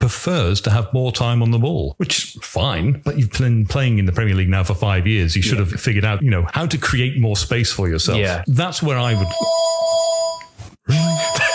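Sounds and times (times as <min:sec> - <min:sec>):
speech: 0:00.1 - 0:09.8
phone ringtone with electronic tones: 0:09.1 - 0:11.5.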